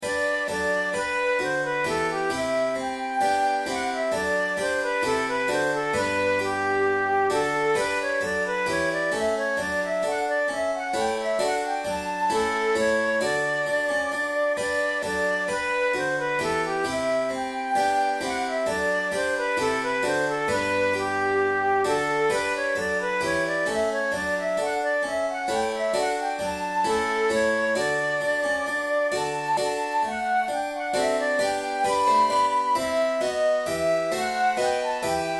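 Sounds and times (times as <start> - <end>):
flute playing a sonata bourree in G major: 0.0 - 35.3.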